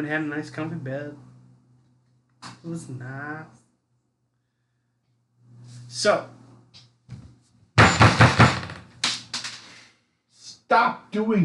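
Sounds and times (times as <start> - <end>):
speech: 0.0 - 1.3, 2.6 - 3.6, 5.9 - 6.4, 10.7 - 11.4
faint low hum: 0.0 - 9.0
hard knocking: 7.8 - 9.5.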